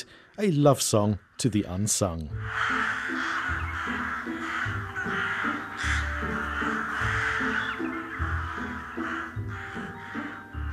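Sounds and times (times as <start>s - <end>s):
speech: 0.4s - 3.0s
crows cawing: 2.4s - 10.7s.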